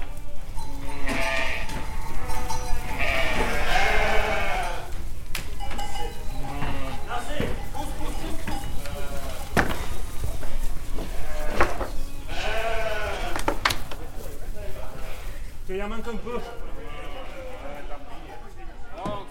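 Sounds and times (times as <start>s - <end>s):
rumbling background of farm activity: 0.0s - 19.2s
sheep bleating during shearing: 0.8s - 5.0s, 6.4s - 7.3s, 11.0s - 13.5s, 16.6s - 18.2s.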